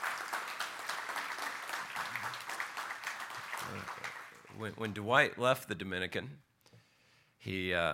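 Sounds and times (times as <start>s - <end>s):
audience applause for a collected offering: 0.0s - 4.8s
speech: 3.7s - 4.0s, 4.6s - 6.5s, 7.4s - 7.9s.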